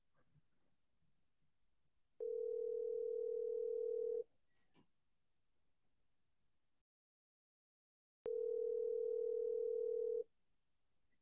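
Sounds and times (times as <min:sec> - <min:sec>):
electronic telephone ringback tone on a business line: 0:02.2 - 0:04.2, 0:08.3 - 0:10.2.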